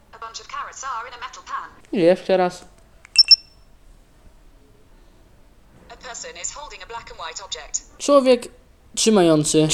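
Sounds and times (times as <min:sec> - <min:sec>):
speech: 0:00.4 - 0:02.7, 0:06.0 - 0:09.7
two-tone electronic chime from a phone app: 0:03.2 - 0:03.5.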